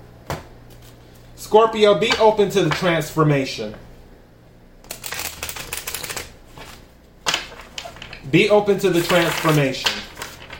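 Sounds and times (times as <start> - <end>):
speech: 1.4 - 3.9, 8.3 - 10.1
tarot deck being split and shuffled: 4.8 - 10.5.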